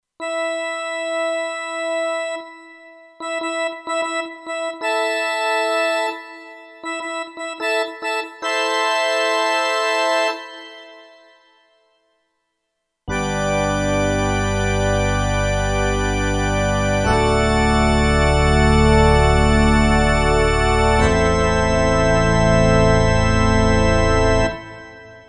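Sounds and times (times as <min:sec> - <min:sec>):
church organ on Kurzweil K2500X: 0:00.2 - 0:11.4, 0:13.1 - 0:25.2.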